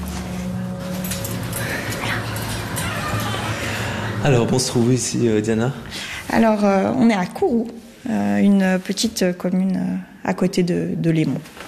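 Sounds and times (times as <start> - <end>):
steady hum: 0.0 - 10.3
indistinct voices: 0.7 - 6.6
dog whimpering and yipping: 2.0 - 3.8
speech: 4.2 - 11.6.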